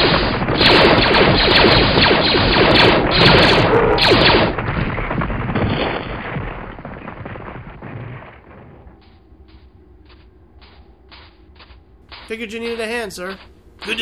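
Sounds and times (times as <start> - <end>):
sci-fi blaster fire: 0.0 - 8.8
speech: 12.4 - 13.9.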